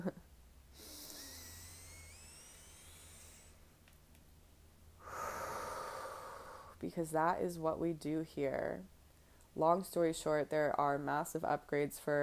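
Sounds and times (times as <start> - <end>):
low hum: 0.0 - 12.2
person taking a deep breath: 0.7 - 3.6, 5.0 - 6.8
speech: 6.8 - 8.9, 9.6 - 12.2.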